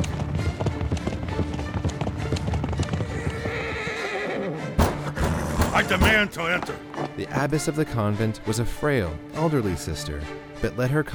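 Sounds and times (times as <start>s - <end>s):
rapid rhythmic clip-clop hoofbeats of galloping horses: 0.0s - 7.5s
horses ridden at a gallop: 0.0s - 7.7s
horses neighing and whinnying: 1.4s - 7.6s
speech: 5.9s - 11.1s.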